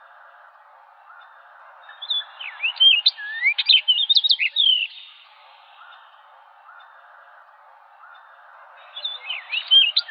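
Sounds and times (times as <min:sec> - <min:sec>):
soft low bird sounds: 0:00.0 - 0:10.0
Orchard oriole whistled song: 0:01.9 - 0:05.2, 0:08.8 - 0:10.0.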